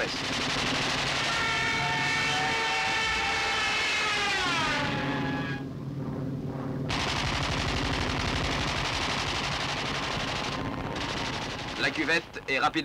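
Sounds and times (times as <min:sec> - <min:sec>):
speech: 0:00.0 - 0:00.4, 0:11.9 - 0:12.8
rapid bursts of machine-gun fire: 0:00.0 - 0:01.8, 0:06.9 - 0:12.3
fighter planes and B-26 bombers roaring overhead: 0:00.0 - 0:12.8.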